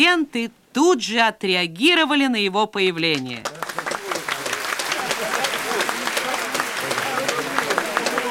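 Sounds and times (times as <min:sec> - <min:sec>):
speech: 0:00.0 - 0:03.6
large crowd applauding: 0:03.2 - 0:08.2.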